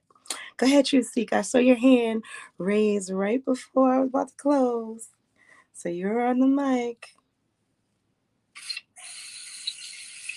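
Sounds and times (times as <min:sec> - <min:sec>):
speech: 0:00.6 - 0:05.2, 0:05.8 - 0:07.2
water gushing from a tap: 0:08.6 - 0:10.3.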